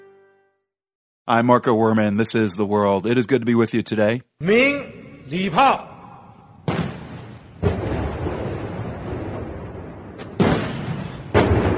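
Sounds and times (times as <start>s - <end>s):
speech: 1.3s - 5.9s
cannon salute booming outdoors: 6.5s - 11.7s.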